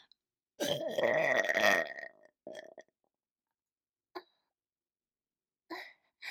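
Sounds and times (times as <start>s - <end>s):
loud drawn-out burp: 0.6s - 2.9s
throaty gulps and gasps: 0.6s - 2.9s.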